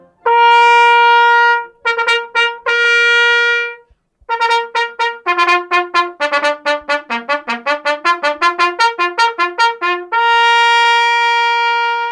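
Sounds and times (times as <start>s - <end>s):
solo trumpet playing: 0.0s - 12.1s.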